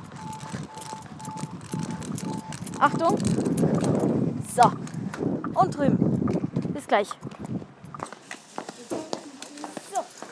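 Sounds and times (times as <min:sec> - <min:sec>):
pedestrian crossing signal beeping: 0:00.0 - 0:03.3
rumbling street background: 0:00.0 - 0:10.3
speech: 0:02.8 - 0:04.0, 0:04.6 - 0:04.8, 0:05.6 - 0:06.2, 0:06.9 - 0:07.2.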